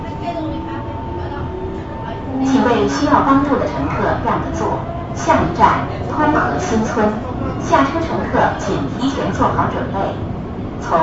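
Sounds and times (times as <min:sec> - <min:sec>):
metro train running on underground line rumble and motor whine: 0:00.0 - 0:11.0
speech: 0:02.8 - 0:11.0.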